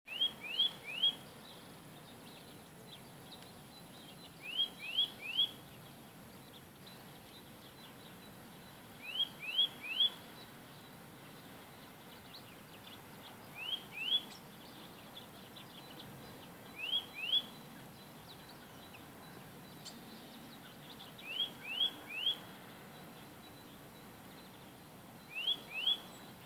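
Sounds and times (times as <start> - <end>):
nuthatch calling tui tui: 0.1 - 1.4, 4.1 - 5.6, 9.0 - 10.2, 12.4 - 22.5, 25.2 - 26.4.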